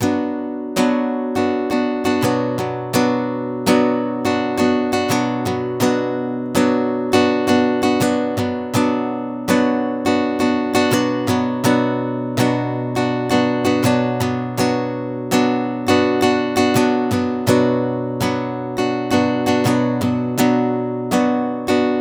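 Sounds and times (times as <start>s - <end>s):
guitar strumming a B chord in sixteenth notes: 0.0s - 21.9s.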